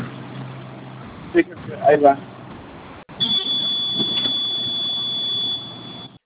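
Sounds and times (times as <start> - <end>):
speech: 1.3 - 2.3
panic button alarm buzzer: 3.2 - 6.2.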